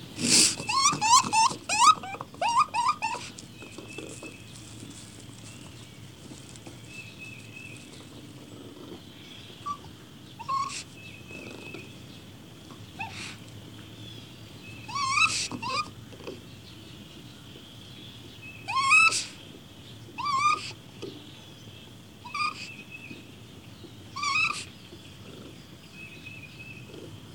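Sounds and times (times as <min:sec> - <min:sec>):
birds: 0:00.0 - 0:27.3
caged raccoon whimpering cries: 0:00.2 - 0:03.4, 0:09.6 - 0:11.9, 0:13.0 - 0:13.4, 0:14.8 - 0:16.0, 0:18.6 - 0:19.4, 0:20.2 - 0:20.8, 0:22.2 - 0:22.8, 0:24.1 - 0:24.7.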